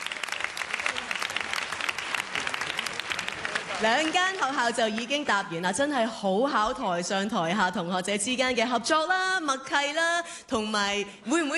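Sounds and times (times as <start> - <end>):
audience applause at a secondary school quiz contest: 0.0 - 5.4
speech: 3.8 - 11.5.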